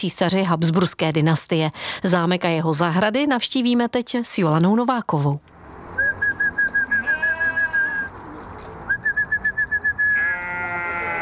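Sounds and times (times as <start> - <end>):
speech: 0.0 - 5.5
rapid trilling whistles calling sheep and goats: 6.0 - 8.0, 8.9 - 10.2
sheep and goats bleating: 6.9 - 8.1, 10.1 - 11.2.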